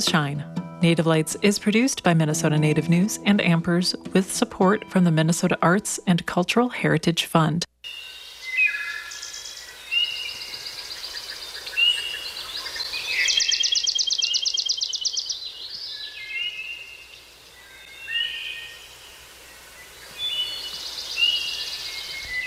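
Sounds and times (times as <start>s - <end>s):
speech: 0.0s - 8.1s
several birds singing and chirping in spring: 7.9s - 18.9s, 19.6s - 22.4s.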